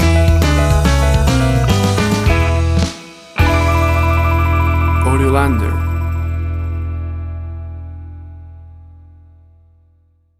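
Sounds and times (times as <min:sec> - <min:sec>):
1950s rock and roll country shuffle stinger: 0:00.0 - 0:07.0.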